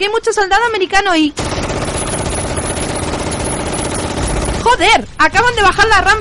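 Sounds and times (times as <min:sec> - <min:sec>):
speech: 0:00.0 - 0:02.2, 0:04.8 - 0:06.1
rapid gunfire: 0:01.4 - 0:05.1.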